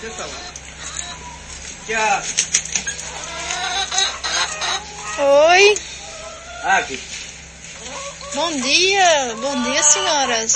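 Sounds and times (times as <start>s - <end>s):
speech: 0.0s - 0.6s, 1.9s - 2.6s, 4.8s - 5.9s, 6.6s - 7.2s, 8.3s - 10.5s
hens clucking in a farmyard: 0.0s - 10.5s.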